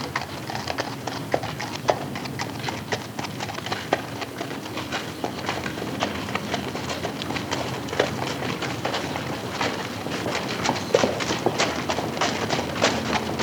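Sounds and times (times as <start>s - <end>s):
two horses' hoofbeats on a soft dirt road: 0.0s - 13.4s.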